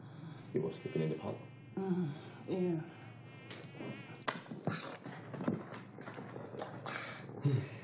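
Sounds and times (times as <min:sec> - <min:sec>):
high-pitched mosquito whine: 0:00.0 - 0:05.3
speech: 0:00.5 - 0:03.0, 0:03.8 - 0:05.5, 0:07.4 - 0:07.8.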